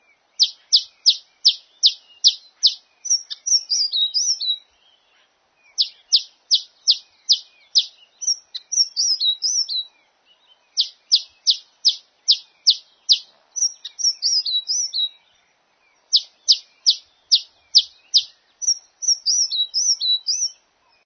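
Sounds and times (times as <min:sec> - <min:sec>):
Malachite Sunbird: 0:00.0 - 0:21.0.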